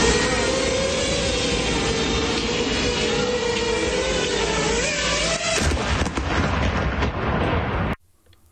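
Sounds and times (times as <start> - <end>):
Russian military drone buzzing in Kherson Ukraine: 0.0 - 5.9
military drone exploding near a van: 5.5 - 8.0.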